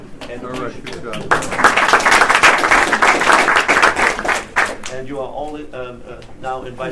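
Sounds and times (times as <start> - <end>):
speech: 0.3 - 3.0, 5.0 - 6.9
audience applause after a panel discussion: 0.6 - 4.9.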